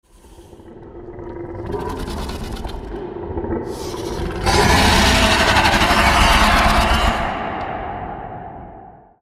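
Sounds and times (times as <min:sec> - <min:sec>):
alien queen creature roar: 0:04.0 - 0:07.7.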